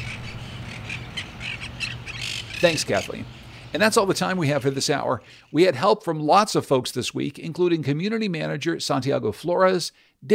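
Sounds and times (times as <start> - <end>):
parrots squawking: 0.0 - 3.6
speech: 2.6 - 10.3.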